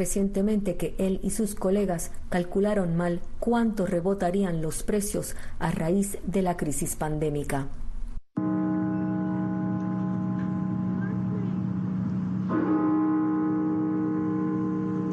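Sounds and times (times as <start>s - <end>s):
speech: 0.0s - 7.8s
deep cathedral bell tolling: 8.4s - 15.1s.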